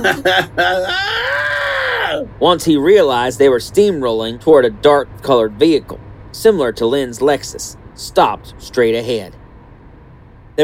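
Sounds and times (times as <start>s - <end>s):
speech: 0.0s - 1.3s, 2.1s - 9.4s
laugh-like vocal bursts: 0.0s - 2.2s.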